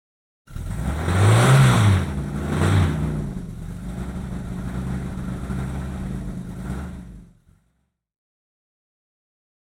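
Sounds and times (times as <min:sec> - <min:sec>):
taxi engine revving and idling: 0:00.5 - 0:07.7.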